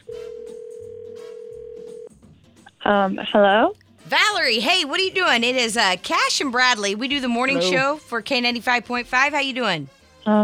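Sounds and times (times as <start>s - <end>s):
steady continuous telephone line tone: 0.0s - 2.1s
speech: 2.9s - 10.4s.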